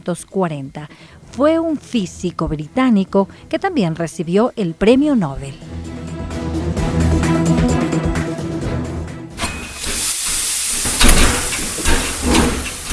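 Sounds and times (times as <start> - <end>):
speech: 0.0 - 5.8
rhythmic low rumble: 0.0 - 9.4
1857 steam locomotive hissing while pulling a small passenger train in Buenos Aires: 9.4 - 12.9.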